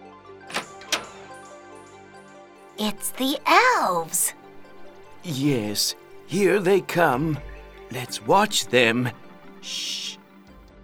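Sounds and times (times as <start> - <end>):
shop door opening with rattling clacks: 0.5 - 2.0
speech: 2.8 - 4.4, 5.2 - 10.2.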